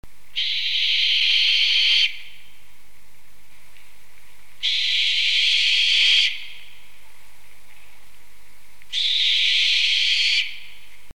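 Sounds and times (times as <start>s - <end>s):
Tyto tenebricosa: 0.3s - 2.6s, 4.6s - 6.8s, 8.9s - 10.9s.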